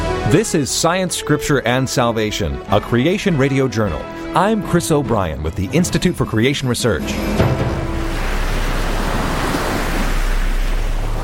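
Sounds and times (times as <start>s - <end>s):
speech: 0.2s - 7.7s
heavy rain pouring: 7.3s - 11.2s.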